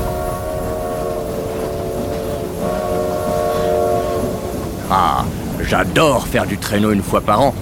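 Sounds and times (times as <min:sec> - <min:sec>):
sustained whistle-like tones: 0:00.0 - 0:04.7
steam train arriving at full speed: 0:00.0 - 0:07.6
speech: 0:05.7 - 0:07.6.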